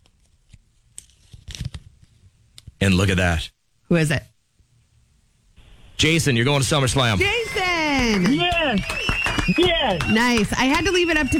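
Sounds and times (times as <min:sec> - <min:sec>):
folded paper slips being grabbed and unfolded: 0:00.0 - 0:02.2
speech: 0:02.8 - 0:04.3, 0:06.0 - 0:11.3.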